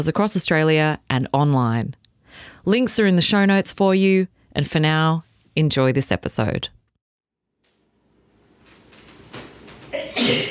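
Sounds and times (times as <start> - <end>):
speech: 0.0 - 6.8
sneeze: 10.0 - 10.4.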